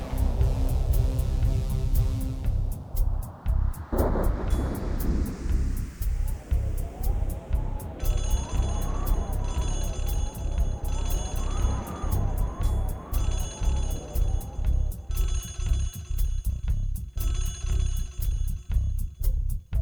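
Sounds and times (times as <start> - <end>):
thunderstorm with heavy wind: 0.0 - 14.8
sharp repeating electronic pulsing: 0.0 - 19.4.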